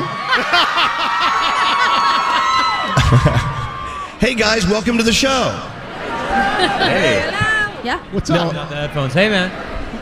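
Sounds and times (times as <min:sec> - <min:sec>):
laughter: 0:00.0 - 0:04.2, 0:05.8 - 0:07.8
large beach crowd cheering and shouting: 0:00.0 - 0:10.0
speech: 0:03.1 - 0:03.5, 0:04.2 - 0:05.7, 0:06.3 - 0:09.7.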